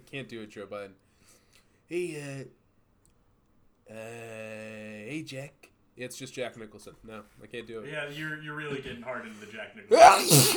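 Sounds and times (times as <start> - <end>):
speech: 0.1 - 1.1, 1.9 - 2.6, 3.9 - 10.5
loud sneeze: 9.9 - 10.5.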